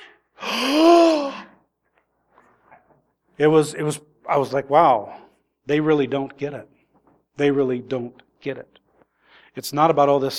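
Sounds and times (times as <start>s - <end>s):
person imitating a crowd's shocked gasp: 0.0s - 1.6s
speech: 3.4s - 6.8s, 7.4s - 8.8s, 9.6s - 10.3s.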